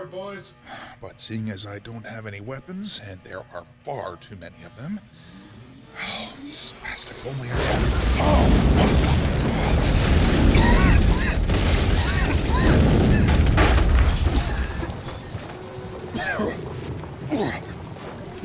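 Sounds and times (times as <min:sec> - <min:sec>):
speech: 0:00.0 - 0:05.4, 0:06.0 - 0:10.8
scattered debris from a building wall in a video game: 0:07.5 - 0:18.4
video game explosion as an Imperial walker crashes through a building wall: 0:07.5 - 0:18.4.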